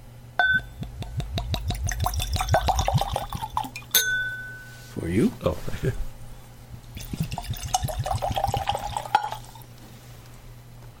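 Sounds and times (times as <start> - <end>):
liquor glugging out of a bottle into a glass: 1.2 - 4.0, 6.9 - 9.7
glass clink: 3.8 - 4.8, 9.0 - 9.5
speech: 5.0 - 6.1.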